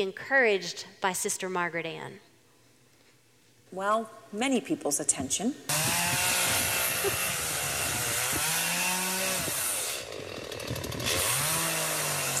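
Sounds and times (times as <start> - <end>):
speech: 0.0 - 2.3, 3.7 - 6.3, 7.0 - 7.3
chainsaw cutting through debris: 5.7 - 12.3.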